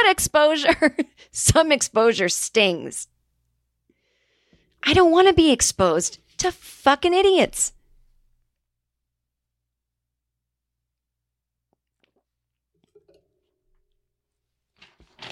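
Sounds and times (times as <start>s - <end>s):
speech: 0.0s - 3.1s, 4.8s - 7.8s
faint crinkles and crackles: 11.7s - 15.3s
paper being ripped by a woman: 14.8s - 15.3s.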